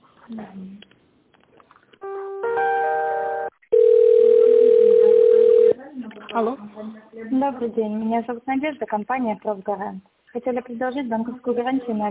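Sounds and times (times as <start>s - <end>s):
speech: 0.3s - 0.9s, 6.4s - 12.0s
telephone line tones during a call transfer: 3.4s - 5.8s.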